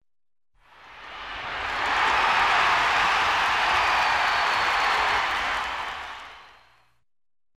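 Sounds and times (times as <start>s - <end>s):
stadium spectators giving a short shout: 0.7s - 6.7s.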